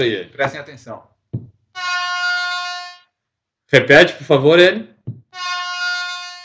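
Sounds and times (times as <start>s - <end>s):
speech: 0.0s - 2.2s, 3.7s - 5.6s
air horn blast for race start: 1.8s - 3.1s, 5.4s - 6.4s
low thump: 5.1s - 5.3s.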